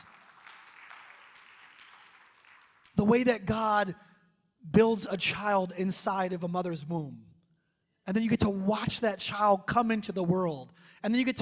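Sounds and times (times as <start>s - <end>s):
audience applauding in a large room: 0.0s - 3.0s
speech: 3.0s - 7.3s, 8.0s - 11.4s.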